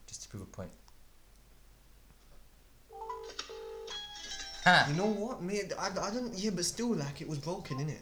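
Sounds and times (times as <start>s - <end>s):
speech: 0.3s - 0.8s, 4.7s - 8.0s
phone ringing with an incoming call: 2.9s - 8.0s.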